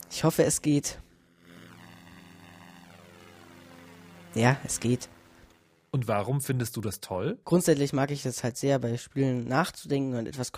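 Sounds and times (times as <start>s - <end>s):
propeller airplane engine droning in a video game: 0.0s - 6.7s
speech: 0.1s - 1.0s, 4.4s - 5.2s, 5.9s - 10.5s.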